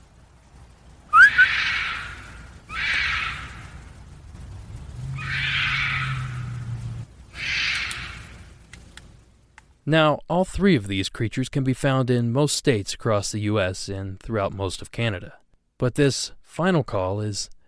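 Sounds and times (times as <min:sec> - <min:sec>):
low hum: 0:00.0 - 0:09.6
bobcat hissing: 0:01.2 - 0:03.6, 0:05.1 - 0:06.6, 0:07.3 - 0:08.3
speech: 0:09.9 - 0:17.6.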